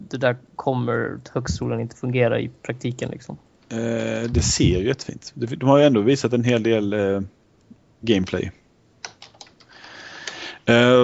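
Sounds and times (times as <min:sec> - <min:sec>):
faint steady hiss: 0:00.0 - 0:11.0
speech: 0:00.1 - 0:07.4, 0:08.0 - 0:08.6, 0:10.7 - 0:11.0
typing on a computer keyboard: 0:09.0 - 0:09.7.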